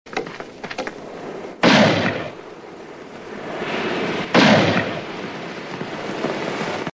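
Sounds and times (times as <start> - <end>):
gunshots: 0.8 - 2.5, 3.5 - 6.9.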